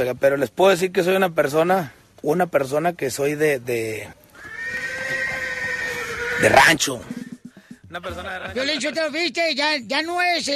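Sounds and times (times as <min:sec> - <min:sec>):
speech: 0:00.0 - 0:04.8, 0:06.4 - 0:07.2, 0:07.9 - 0:10.5
horse neighing: 0:04.3 - 0:07.4.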